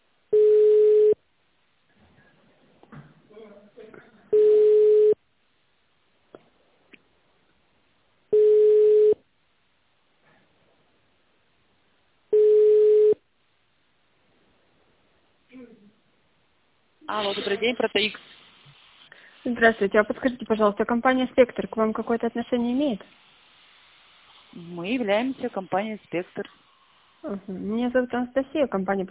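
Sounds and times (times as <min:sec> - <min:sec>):
telephone ringback tone while call is transferred: 0:00.3 - 0:01.2, 0:04.3 - 0:05.2, 0:08.3 - 0:09.2, 0:12.3 - 0:13.2
speech: 0:17.1 - 0:18.4, 0:19.4 - 0:23.3, 0:24.5 - 0:26.6, 0:27.2 - 0:29.0.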